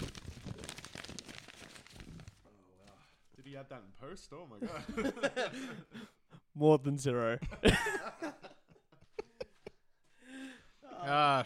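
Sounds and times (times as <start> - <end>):
ream of paper sheets being shuffled and handled: 0.0 - 3.6
speech: 3.6 - 8.5, 11.1 - 11.4
laughter: 4.6 - 6.2, 7.4 - 9.9.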